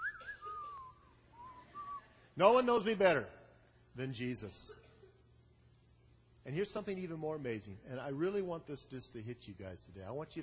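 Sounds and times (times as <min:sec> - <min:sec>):
audience whistling a tune together: 0:00.0 - 0:02.3
speech: 0:02.4 - 0:03.4, 0:04.0 - 0:04.8, 0:06.4 - 0:10.4.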